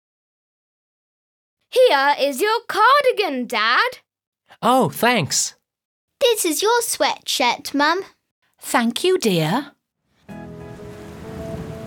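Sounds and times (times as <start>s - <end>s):
speech: 1.7s - 5.6s, 6.2s - 9.8s
rain falling as a storm approaches: 10.3s - 11.8s.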